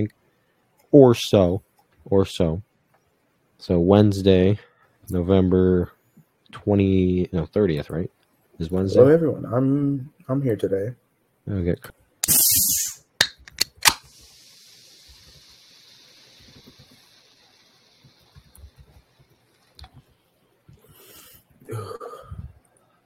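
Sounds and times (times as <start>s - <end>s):
speech: 0.9s - 2.7s, 3.6s - 12.6s
freshly opened Coke fizzing: 12.2s - 13.0s, 13.8s - 19.8s
crisp pops of a freshly opened Coke: 12.2s - 14.2s
freshly opened Coke hissing: 12.2s - 19.9s.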